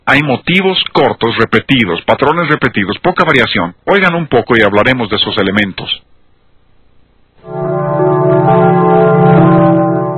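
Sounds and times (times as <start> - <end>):
speech: 0.1 - 6.1
church-like bells ringing in new age music: 7.4 - 10.1.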